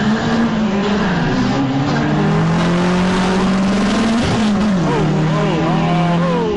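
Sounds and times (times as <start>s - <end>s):
Honda Civic engine accelerating hard down a drag strip: 0.0s - 6.5s.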